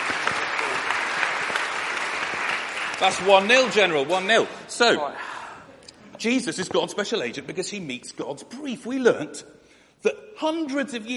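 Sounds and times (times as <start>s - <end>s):
group applause rewarding a child's correct answer: 0.0s - 4.5s
speech: 3.0s - 5.3s, 6.2s - 11.1s.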